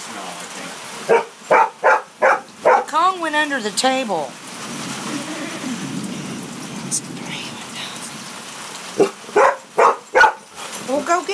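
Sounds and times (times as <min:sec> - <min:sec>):
rain falling: 0:00.0 - 0:11.3
dog barking: 0:01.0 - 0:02.9, 0:09.0 - 0:10.7
speech: 0:03.0 - 0:04.8, 0:06.9 - 0:07.2.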